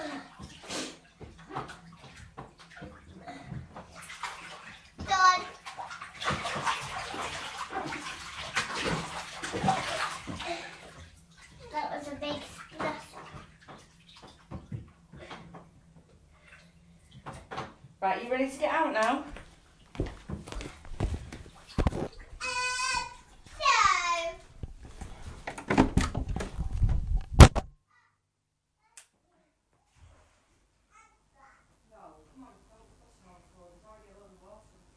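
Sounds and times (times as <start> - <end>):
child splashing in bubble bath water: 0.0 - 27.5
child speaking: 5.0 - 5.6, 11.6 - 13.2, 22.4 - 24.4, 27.9 - 28.2, 28.8 - 29.6, 30.9 - 31.8
speech: 18.2 - 19.3.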